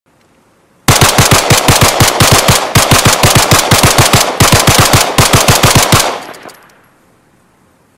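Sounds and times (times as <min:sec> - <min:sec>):
Glock pistol: 0:00.9 - 0:06.9.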